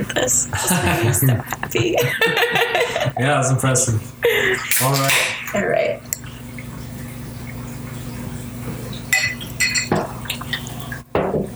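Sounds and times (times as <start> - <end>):
laughter: 0.0 - 5.9
beer pouring into a glass: 0.0 - 11.5
hum: 0.0 - 11.5
speech: 0.1 - 6.1
glass clinks: 9.1 - 10.7.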